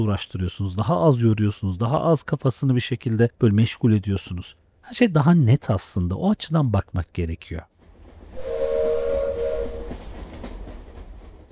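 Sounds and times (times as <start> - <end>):
speech: 0.0 - 7.7
rolling wheels of a train between Ankara and Istanbul rumbling and clattering: 7.7 - 11.5
sustained horn of a train travelling between Ankara and Istanbul: 8.4 - 10.2.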